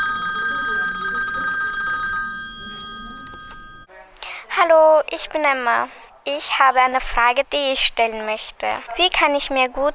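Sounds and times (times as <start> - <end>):
telephone ringing with an incoming call: 0.0 - 3.9
speech: 4.6 - 9.9.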